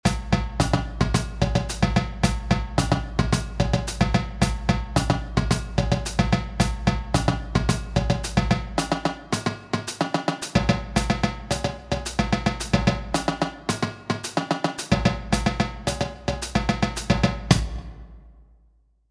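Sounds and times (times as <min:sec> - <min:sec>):
disco music with all parts: 0:00.0 - 0:17.6.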